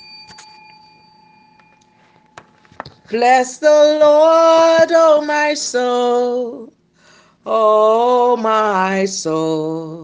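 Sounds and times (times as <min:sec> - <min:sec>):
bell ringing: 0:00.0 - 0:03.3
speech: 0:03.1 - 0:06.7, 0:07.4 - 0:10.0.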